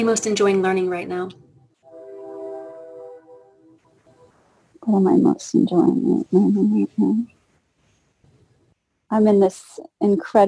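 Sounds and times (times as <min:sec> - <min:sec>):
speech: 0:00.0 - 0:01.4, 0:04.9 - 0:07.4, 0:09.1 - 0:10.4
passing train horn blast: 0:01.8 - 0:04.5.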